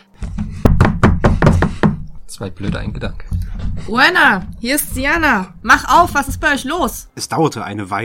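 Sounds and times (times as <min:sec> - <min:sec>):
firm knocking on the wooden door of a house: 0:00.2 - 0:07.1
speech: 0:02.4 - 0:08.0.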